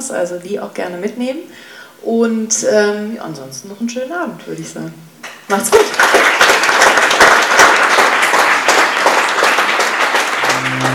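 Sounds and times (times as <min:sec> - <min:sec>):
speech: 0:00.0 - 0:06.6
audience applause: 0:05.9 - 0:10.9.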